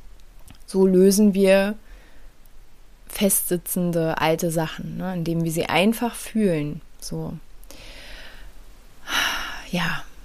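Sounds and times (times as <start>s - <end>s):
speech: 0.7s - 1.8s, 3.2s - 7.9s, 9.7s - 10.1s
deep breath with inhale and rushing exhale: 1.8s - 2.4s, 7.7s - 9.7s.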